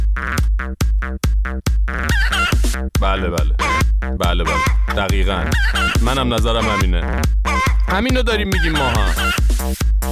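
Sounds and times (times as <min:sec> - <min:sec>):
speech: 0:00.2 - 0:01.8, 0:02.8 - 0:09.8
hen clucking loudly: 0:01.9 - 0:02.8, 0:03.5 - 0:06.8, 0:08.5 - 0:09.5
hen's warbling squawks: 0:01.9 - 0:02.8, 0:03.4 - 0:09.6.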